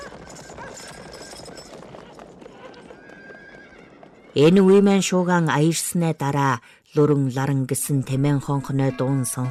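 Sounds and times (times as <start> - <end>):
horse whinnying: 0.0 - 4.4
horses' hooves trampling: 0.0 - 5.4
speech: 4.4 - 9.5.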